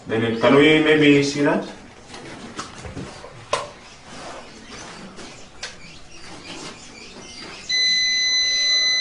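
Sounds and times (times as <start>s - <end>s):
speech: 0.0s - 1.8s
faint noise: 0.0s - 8.9s
solar power system overload alarm tone: 7.7s - 8.9s.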